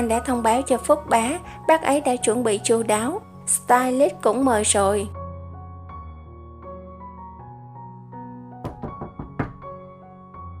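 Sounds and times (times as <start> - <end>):
speech: 0.0 - 5.2
soft steady music: 0.0 - 10.5
knocking on a door: 8.6 - 9.8.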